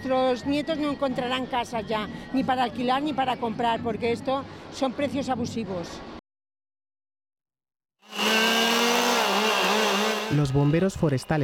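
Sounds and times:
speech: 0.0 - 6.2, 10.3 - 11.4
chainsaws held by forest firefighters roaring at a street protest: 8.0 - 10.7.

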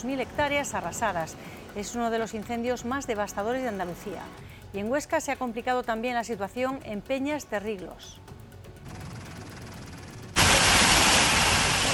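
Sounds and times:
speech: 0.0 - 8.3
heavy rain pouring down in a storm: 10.4 - 11.9.

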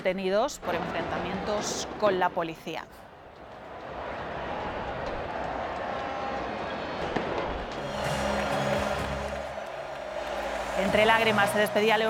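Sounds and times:
speech: 0.0 - 3.1, 10.8 - 12.0
noisy celebrating outdoor crowd cheering: 3.4 - 12.0
fireworks crackling: 7.0 - 12.0.

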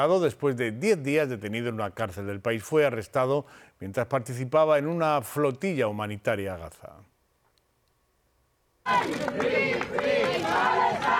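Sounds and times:
speech: 0.0 - 7.1, 8.9 - 10.8
large crowd chanting a slogan in unison: 8.9 - 11.1
scattered clapping: 8.9 - 11.1.

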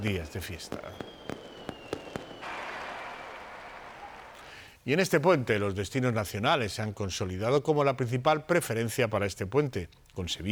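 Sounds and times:
speech: 0.0 - 1.1, 4.8 - 10.5
crowd of thousands cheering: 0.0 - 4.7
firework bangs in a fireworks display in the Plaza del Pilar, Zaragoza: 0.0 - 4.8
faint high whistle: 0.7 - 4.7.

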